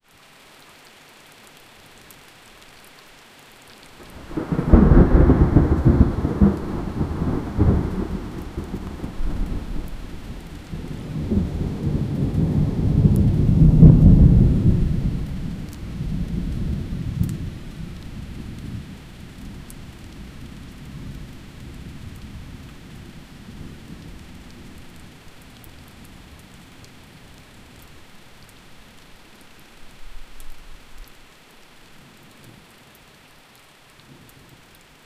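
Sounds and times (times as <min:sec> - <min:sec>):
isolated rain: 0:00.0 - 0:35.0
thunder: 0:04.0 - 0:19.0.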